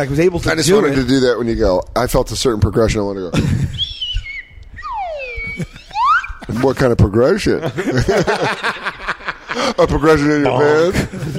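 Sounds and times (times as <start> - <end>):
speech: 0.0 - 3.8, 6.5 - 9.0, 9.6 - 11.3
slide whistle playing sliding tones: 3.8 - 6.5
laughter: 5.2 - 6.9, 7.6 - 10.1, 10.7 - 11.3.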